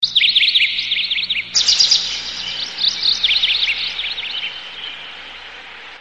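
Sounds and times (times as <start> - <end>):
birds chirping: 0.0 - 5.9.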